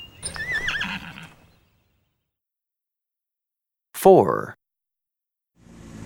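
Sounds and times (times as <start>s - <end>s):
horse neighing: 0.2s - 1.5s
speech: 4.0s - 4.6s.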